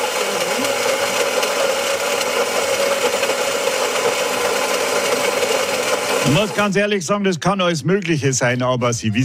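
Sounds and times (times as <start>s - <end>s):
coffee machine's built-in grinder whirring: 0.0s - 7.0s
speech: 6.3s - 9.2s.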